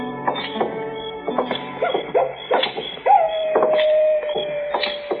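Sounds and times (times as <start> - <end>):
coyote yipping: 0.3 - 5.1
coyote howling: 1.7 - 5.1.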